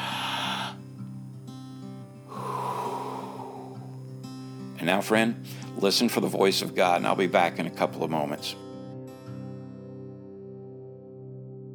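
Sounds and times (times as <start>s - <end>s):
one big deep breath: 0.0s - 1.1s, 2.2s - 4.2s, 5.4s - 5.8s
faint steady sustained tone: 0.0s - 4.7s
speech: 4.8s - 8.6s.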